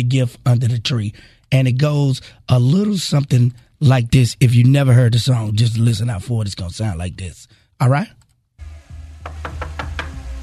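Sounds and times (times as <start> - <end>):
speech: 0.0 - 8.2
knocking on a door: 9.2 - 10.2.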